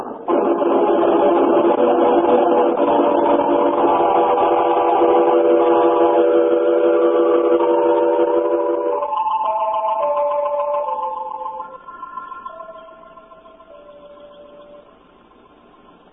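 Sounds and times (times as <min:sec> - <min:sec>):
departing train rumbling: 0:00.0 - 0:16.1
train whistle blowing: 0:02.6 - 0:09.5.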